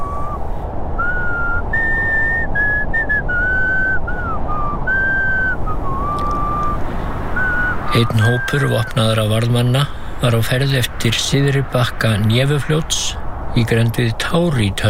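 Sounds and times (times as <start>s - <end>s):
person whistling a broken rendition of a Russian folk tune on a half-dark street: 0.0s - 0.4s, 1.0s - 6.8s, 7.4s - 9.1s
steady windy hiss: 0.0s - 14.8s
speech: 8.0s - 14.8s.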